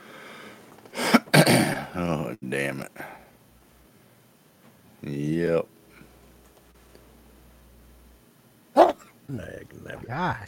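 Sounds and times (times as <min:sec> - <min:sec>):
sneezing: 0:01.0 - 0:02.0, 0:08.8 - 0:09.2
speech: 0:02.5 - 0:03.3, 0:05.0 - 0:05.7, 0:09.3 - 0:10.4.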